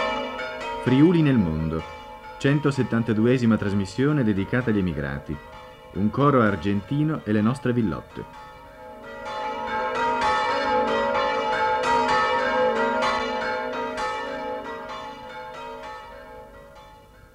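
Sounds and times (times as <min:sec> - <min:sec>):
several bells pealing: 0:00.0 - 0:17.3
speech: 0:00.8 - 0:08.5.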